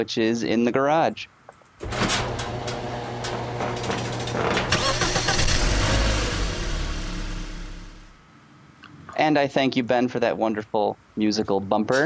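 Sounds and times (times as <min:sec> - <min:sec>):
speech: 0:00.0 - 0:02.3, 0:09.2 - 0:12.0
small displacement engine cranking and starting: 0:01.8 - 0:08.1.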